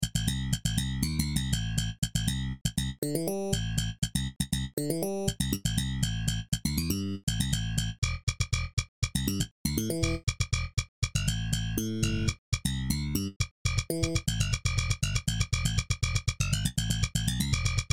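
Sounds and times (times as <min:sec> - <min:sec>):
slap bass: 0:00.0 - 0:17.9.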